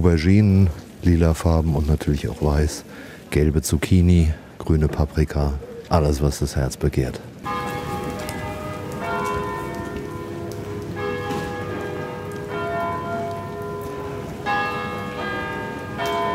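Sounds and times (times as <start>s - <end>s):
speech: 0.0s - 7.6s
church bells ringing in an overlapping peal: 7.4s - 16.3s.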